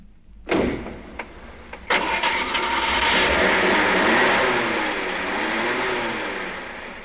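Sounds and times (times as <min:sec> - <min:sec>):
car engine starting and running with a steady full rumble: 0:00.3 - 0:07.0
sharp thud: 0:00.5 - 0:01.9.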